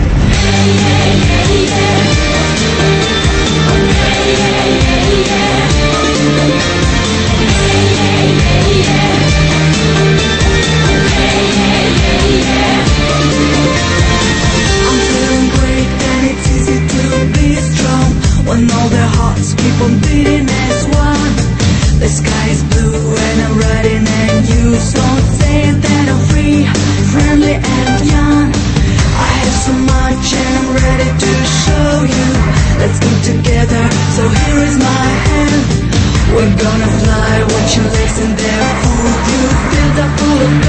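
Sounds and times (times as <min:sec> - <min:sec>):
upbeat pop song with vocals and full band arrangement, song contest entry: 0:00.2 - 0:40.6.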